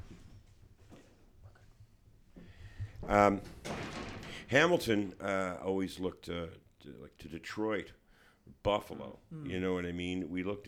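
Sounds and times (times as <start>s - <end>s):
door swinging shut with a creak and thud: 2.7s - 5.2s
speech: 3.1s - 3.6s, 4.5s - 10.6s.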